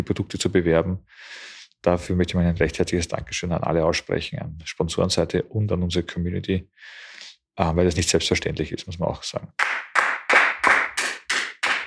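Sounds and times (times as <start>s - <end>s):
speech: 0.0s - 9.9s
one person clapping hands after a speech: 9.6s - 11.8s.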